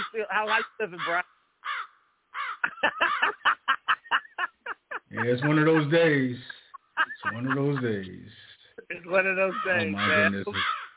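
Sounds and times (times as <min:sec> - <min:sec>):
crow cawing: 0:00.0 - 0:03.5, 0:09.4 - 0:10.9
speech: 0:00.2 - 0:01.4, 0:02.6 - 0:03.5, 0:05.1 - 0:10.8
laughter: 0:02.6 - 0:10.7.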